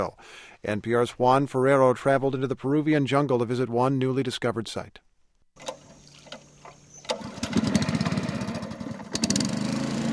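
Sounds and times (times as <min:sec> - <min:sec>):
speech: 0:00.0 - 0:05.0
small outboard motor on a dugout canoe starting in the Peruvian jungle: 0:05.6 - 0:10.1.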